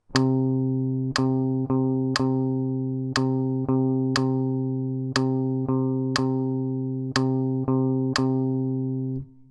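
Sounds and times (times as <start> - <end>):
rhythm of quarter note and two eighth notes: 0.0 - 9.2
metronome clicking: 0.0 - 9.4.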